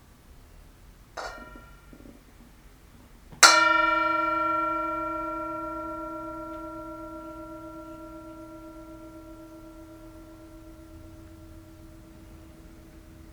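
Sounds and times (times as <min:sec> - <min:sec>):
mindfulness bell struck and ringing: 0:03.4 - 0:13.3.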